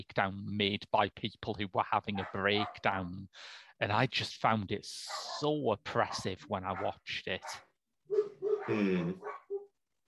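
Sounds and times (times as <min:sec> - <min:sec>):
speech: 0:00.0 - 0:09.4
dogs barking: 0:02.1 - 0:02.9, 0:05.1 - 0:09.7.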